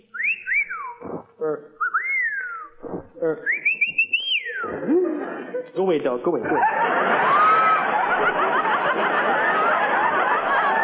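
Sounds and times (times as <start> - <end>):
person wolf whistling: 0.0 - 5.0
short rough vocal noise: 0.8 - 1.8, 2.6 - 3.6
speech: 1.4 - 1.8, 3.2 - 3.6, 5.8 - 7.4
laughter: 3.2 - 10.8.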